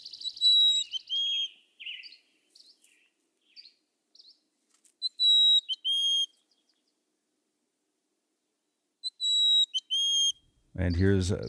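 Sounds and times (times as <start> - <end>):
Sierra Nevada mountain chickadee singing high whistled notes: 0.0 - 4.4, 5.0 - 6.8, 9.0 - 11.4
speech: 10.8 - 11.4.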